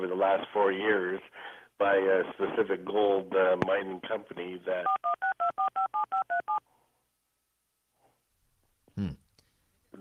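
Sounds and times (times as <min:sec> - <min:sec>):
speech: 0:00.2 - 0:05.1, 0:09.0 - 0:09.2
telephone keypad tones beeping: 0:04.9 - 0:06.6.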